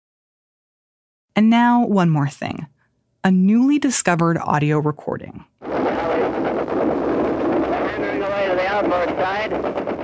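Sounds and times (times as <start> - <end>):
speech: 1.4 - 6.7
heavy anti-aircraft fire rumbling: 5.6 - 10.0
correspondent narrating: 7.7 - 9.7.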